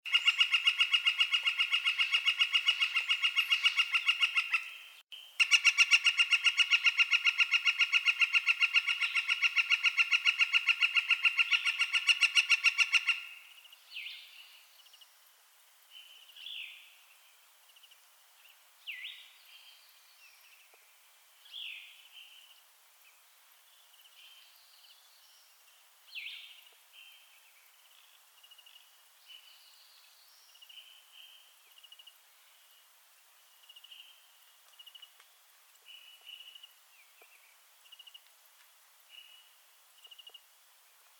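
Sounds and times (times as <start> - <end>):
Northern Flicker Colaptes auratus collaris calling: 0.1 - 14.2.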